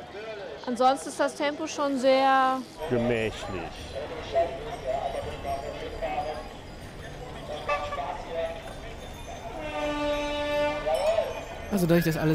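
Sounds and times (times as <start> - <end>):
busy street din: 0.0 - 12.3
speech: 0.7 - 4.9, 11.7 - 12.3
tram rolling past: 1.6 - 12.3
tram horn sustained tone: 7.5 - 8.4, 9.5 - 11.3.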